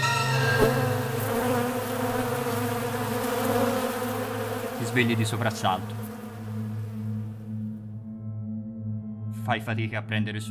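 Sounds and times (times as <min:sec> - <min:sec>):
swarm of angry bees buzzing: 0:00.1 - 0:07.8
speech: 0:05.0 - 0:06.0, 0:09.5 - 0:10.4.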